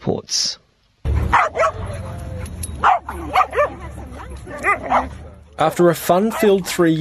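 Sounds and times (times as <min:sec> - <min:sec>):
speech: 0:00.1 - 0:00.6, 0:05.6 - 0:06.9
dog barking: 0:01.2 - 0:05.4, 0:06.3 - 0:06.6.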